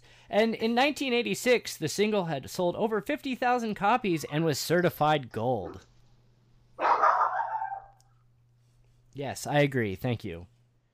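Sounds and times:
faint steady hum: 0.0s - 10.9s
speech: 0.3s - 5.9s, 9.2s - 10.6s
Chihuahua barking next door: 6.8s - 8.0s.

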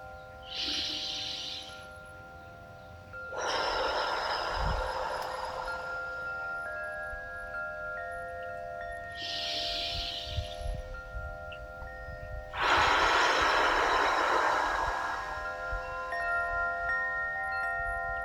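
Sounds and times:
soft sustained music tones: 0.0s - 18.2s
deep abdominal breathing: 0.5s - 2.0s, 3.3s - 6.7s, 9.2s - 11.0s, 12.4s - 16.6s.

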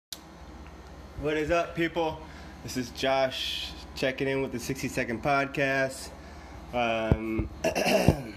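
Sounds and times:
speech: 1.2s - 8.3s
person clearing throat in gruff voiced bouts: 7.6s - 8.3s.

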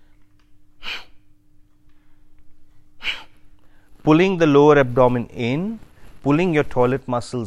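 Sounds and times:
quiet low hum: 0.0s - 7.4s
forceful nasal exhalations in breath of fire breathing technique: 0.8s - 1.2s, 3.0s - 3.9s
speech: 4.1s - 7.4s.

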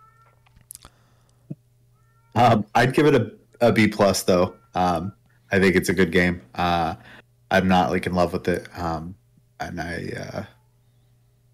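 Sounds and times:
cat meowing: 0.0s - 0.4s, 2.0s - 2.7s
steady low electrical hum: 0.0s - 11.5s
speech: 2.4s - 10.6s.

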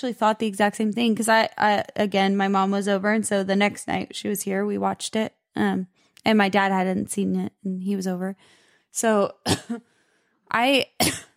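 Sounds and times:
speech: 0.0s - 9.9s, 10.5s - 11.3s
person coughing from a tickle in the throat: 9.4s - 9.8s, 11.0s - 11.3s
person clearing throat from a tickle in the throat: 9.5s - 9.8s, 11.0s - 11.3s.

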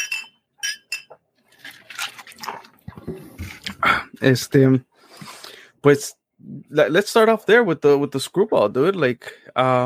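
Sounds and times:
glasses clinking together in a toast: 0.0s - 1.2s
speech: 4.2s - 4.9s, 5.8s - 9.8s.

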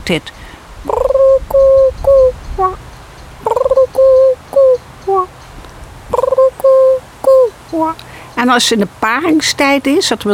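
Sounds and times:
speech: 0.1s - 0.4s, 7.7s - 10.3s
person imitating a turtle dove's cooing: 0.8s - 2.8s, 3.4s - 5.3s, 6.1s - 8.0s.

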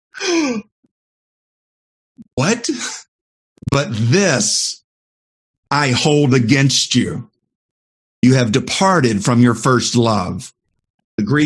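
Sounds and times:
speech: 0.2s - 0.7s, 2.4s - 3.1s, 3.7s - 4.8s, 5.7s - 7.3s, 8.2s - 10.6s, 11.2s - 11.4s
voiced gasp: 0.2s - 0.7s.

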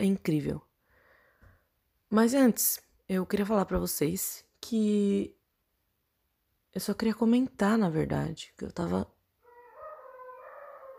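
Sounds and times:
speech: 0.0s - 0.7s, 2.1s - 5.4s, 6.8s - 9.2s
rooster crowing: 9.4s - 10.9s.

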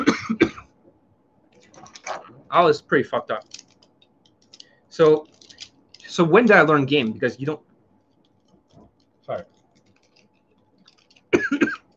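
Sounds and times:
harsh coughs from a person with a voice worn out from yelling: 0.0s - 0.7s, 11.3s - 11.9s
speech: 2.5s - 3.6s, 5.0s - 5.3s, 6.1s - 7.6s, 9.3s - 9.5s.

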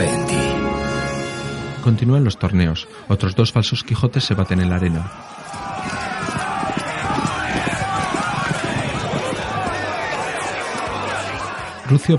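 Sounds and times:
noisy tournament scene background: 0.0s - 12.1s
speech: 1.8s - 5.6s, 11.9s - 12.1s
Percheron draft horse hooves clip-clopping: 5.4s - 10.9s.

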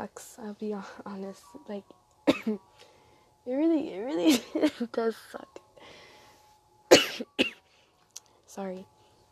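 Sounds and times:
speech: 0.0s - 6.0s, 8.6s - 8.9s
sick person coughing harshly: 2.3s - 2.6s, 6.9s - 7.6s.

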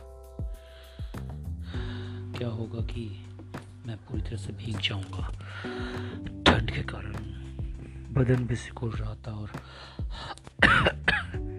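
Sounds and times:
speech: 2.4s - 3.3s, 3.9s - 7.5s, 8.2s - 10.9s
man clearing throat: 10.6s - 11.4s
man walking alone in rain coughing: 10.6s - 11.4s.

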